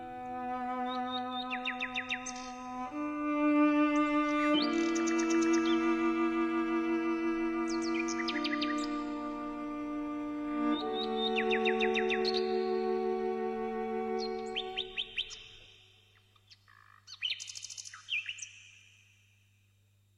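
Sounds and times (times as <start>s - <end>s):
low sustained bowed cello melody: 0.0s - 15.0s
nightingale singing bright trilling phrases: 0.0s - 19.1s.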